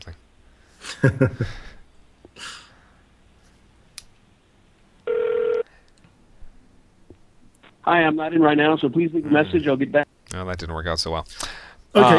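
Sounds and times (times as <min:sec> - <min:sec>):
speech: 0:01.0 - 0:01.7, 0:07.9 - 0:12.1
faint breath: 0:02.4 - 0:03.1, 0:11.4 - 0:11.9
phone line ringback tone on outgoing call to a cell phone: 0:05.1 - 0:05.6.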